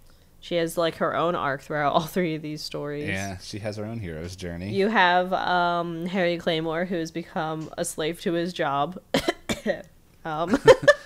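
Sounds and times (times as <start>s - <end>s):
speech: 0.5s - 10.9s
throaty voiced sound: 3.0s - 3.9s
person coughing with a rough hacking quality: 9.2s - 9.8s.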